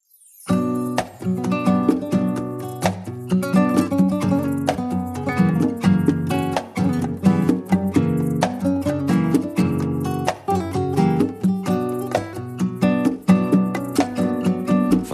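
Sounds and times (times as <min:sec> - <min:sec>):
Spanish guitar playing: 0:00.5 - 0:15.1.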